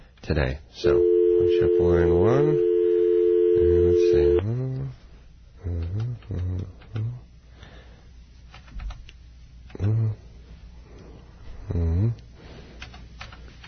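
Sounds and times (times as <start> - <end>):
speech: 0.3 - 2.7, 3.6 - 5.0, 5.6 - 7.3
phone line steady electronic dial tone: 0.9 - 4.4.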